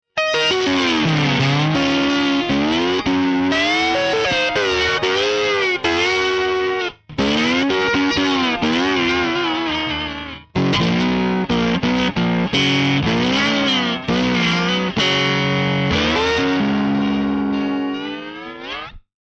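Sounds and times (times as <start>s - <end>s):
Fender Bassman amplifier loud and compressed: 0.2s - 19.0s.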